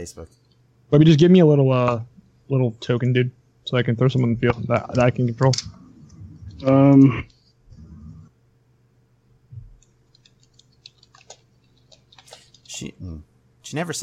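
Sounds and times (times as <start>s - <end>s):
speech: 0.0s - 5.8s, 6.6s - 7.4s, 12.8s - 14.0s
low steady hum: 0.0s - 14.0s
typing on a computer keyboard: 10.1s - 12.8s.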